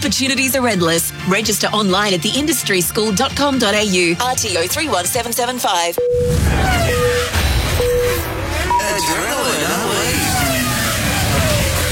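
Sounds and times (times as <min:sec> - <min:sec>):
speech: 0:00.0 - 0:07.1
small go-kart engines revving at a go-kart track in Landsborough: 0:06.3 - 0:11.8.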